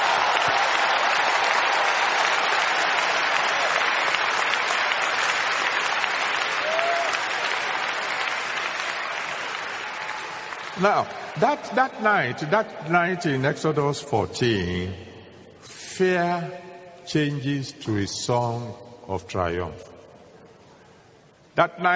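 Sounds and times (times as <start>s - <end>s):
audience applause after a guest is introduced: 0.0s - 11.8s
speech: 10.8s - 15.1s, 16.0s - 19.9s, 21.6s - 21.9s.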